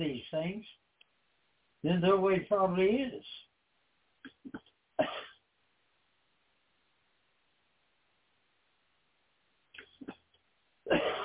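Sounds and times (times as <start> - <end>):
speech: 1.9 - 3.4
rough raspy hacking cough: 4.5 - 5.4, 10.9 - 11.2.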